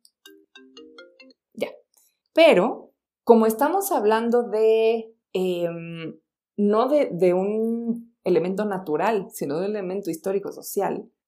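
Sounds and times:
mobile phone notification ringtone: 0.2s - 1.8s
speech: 1.6s - 1.8s, 2.4s - 11.2s.

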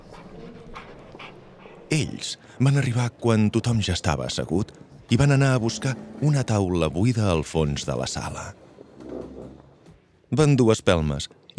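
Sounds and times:
dog panting: 0.0s - 6.7s
speech: 1.9s - 8.6s, 10.3s - 11.5s.

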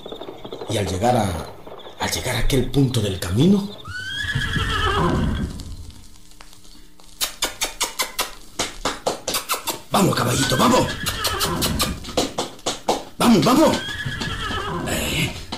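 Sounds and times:
horse hoof clops on hard ground: 0.0s - 15.5s
speech: 0.7s - 5.4s, 9.9s - 11.9s, 13.3s - 14.0s
horse whinnying while being hobbled: 3.8s - 5.7s, 9.3s - 12.3s, 13.2s - 15.4s
another horse snorting neigh: 3.9s - 5.6s, 9.4s - 12.1s, 13.4s - 15.2s.

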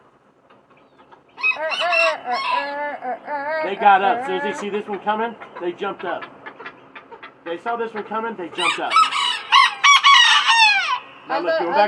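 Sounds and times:
rooster crowing from a high perch: 1.4s - 4.5s, 8.6s - 11.1s
speech: 2.3s - 6.3s, 7.4s - 9.1s, 11.3s - 11.8s.

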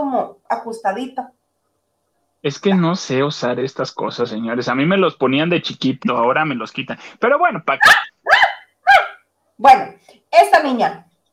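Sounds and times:
speech: 0.2s - 1.4s, 2.4s - 8.4s, 9.6s - 11.1s
dog barking: 7.8s - 9.2s.

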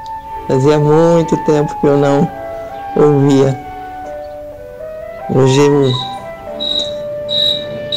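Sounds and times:
speech: 0.5s - 3.6s, 5.3s - 6.1s
cricket chirping in short shrill trills: 5.8s - 7.9s.

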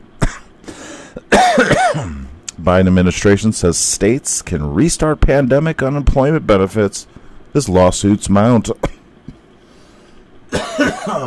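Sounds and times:
person clearing throat: 0.2s - 0.5s, 1.2s - 2.4s, 10.5s - 11.2s
person coughing: 0.2s - 0.6s, 1.2s - 2.4s, 10.5s - 11.2s
speech: 1.6s - 8.8s.

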